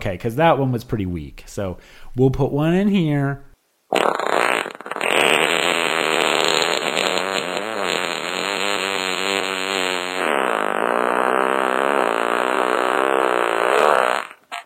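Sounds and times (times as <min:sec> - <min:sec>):
speech: 0:00.0 - 0:04.2
long loud buzzy fart sound effect with rumbling sputtering tone: 0:03.9 - 0:14.6.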